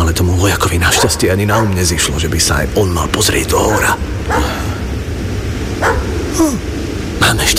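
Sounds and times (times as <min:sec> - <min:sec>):
constant low rumble: 0:00.0 - 0:07.5
speech: 0:00.1 - 0:04.8, 0:05.8 - 0:07.5
border guard's dog barking at night: 0:00.9 - 0:01.8, 0:03.7 - 0:04.5, 0:05.8 - 0:06.2.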